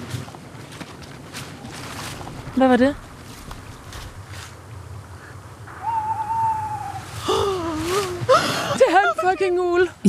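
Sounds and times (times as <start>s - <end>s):
speech: 2.6s - 3.0s
owl hooting in a small wood at night: 5.2s - 8.3s
laughter: 8.3s - 9.9s.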